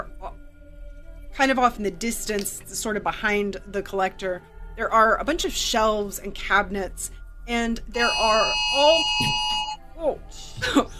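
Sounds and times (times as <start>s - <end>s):
speech: 1.4s - 9.4s, 10.0s - 10.9s
voice mimicking an alarm with a high beeping tone: 8.0s - 9.8s.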